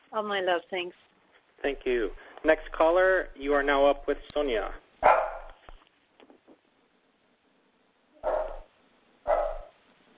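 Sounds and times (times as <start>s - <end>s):
speech: 0.1s - 4.8s
dog barking and yipping: 5.0s - 5.6s, 8.2s - 9.8s.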